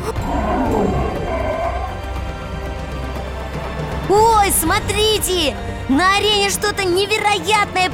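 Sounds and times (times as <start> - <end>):
lions and tigers roaring and growling: 0.0 - 2.6
speech: 4.1 - 7.9.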